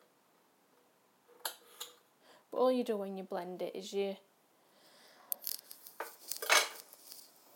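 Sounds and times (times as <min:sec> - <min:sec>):
speech: 0:02.5 - 0:04.3
soup pan and big jug clinking and scraping as soup is tipped: 0:06.0 - 0:07.2.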